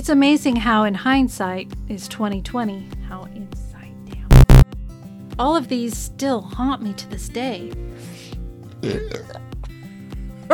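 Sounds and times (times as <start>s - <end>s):
speech: 0.0s - 3.7s, 5.4s - 8.2s, 8.8s - 9.4s
person belching: 8.8s - 9.4s.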